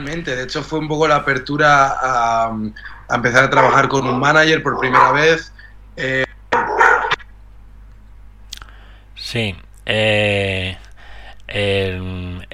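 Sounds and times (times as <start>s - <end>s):
speech: 0.0s - 6.2s, 9.3s - 10.8s, 11.5s - 12.5s
dog whining barks: 3.4s - 5.4s, 6.5s - 7.3s
dog barking: 3.5s - 4.0s, 4.7s - 5.3s, 6.5s - 7.2s.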